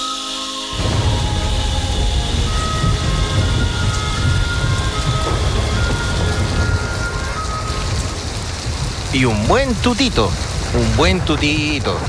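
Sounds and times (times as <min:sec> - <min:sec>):
rain pouring onto a tin roof: 0:00.0 - 0:12.0
speech: 0:09.2 - 0:12.0.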